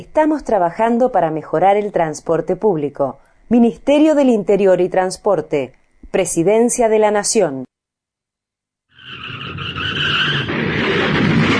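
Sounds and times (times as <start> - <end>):
speech: 0.0 - 7.7
car tires skidding with a loud screech: 9.0 - 11.5
engine and road rumble: 9.0 - 11.5.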